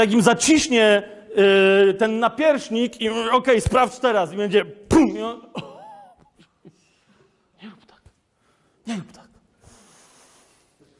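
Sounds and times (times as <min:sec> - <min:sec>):
speech: 0:00.0 - 0:05.7, 0:08.9 - 0:09.2
loud breathing through the nose: 0:09.6 - 0:10.9.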